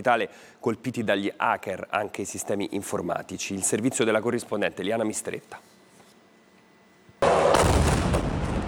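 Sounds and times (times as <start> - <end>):
speech: 0.0 - 5.8
crackling bursts at a burning oil refinery: 7.2 - 8.6
explosions from drones and missiles striking an oil refinery: 7.2 - 8.6.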